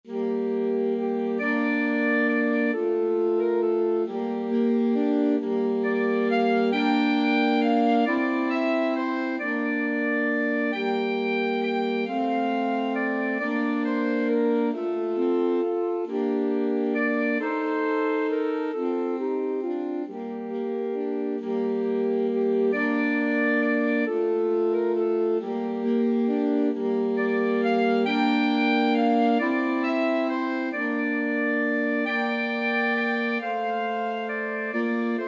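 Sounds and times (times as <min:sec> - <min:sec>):
alto saxophone trio playing a folk tune: 0:00.0 - 0:35.2.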